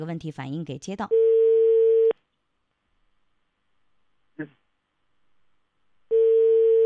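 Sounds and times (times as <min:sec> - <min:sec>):
speech: 0:00.0 - 0:01.4, 0:04.4 - 0:04.6
telephone ringback tone while calling: 0:01.2 - 0:02.1, 0:06.1 - 0:06.8.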